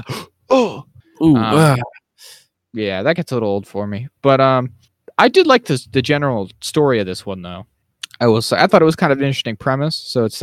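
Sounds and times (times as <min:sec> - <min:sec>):
speech: 0:00.0 - 0:00.6, 0:01.2 - 0:02.0, 0:02.8 - 0:10.4
voice imitating exaggerated grunts and moans: 0:00.5 - 0:01.9.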